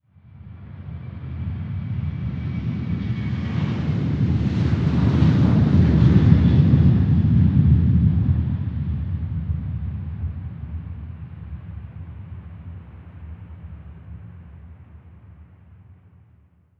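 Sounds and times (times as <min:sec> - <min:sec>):
airplane: 0:00.0 - 0:16.7.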